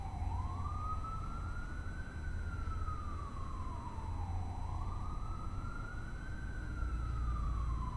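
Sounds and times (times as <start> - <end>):
emergency vehicle siren wailing in rising and falling sweeps: 0.0 - 7.9
steady low traffic rumble: 0.0 - 7.9.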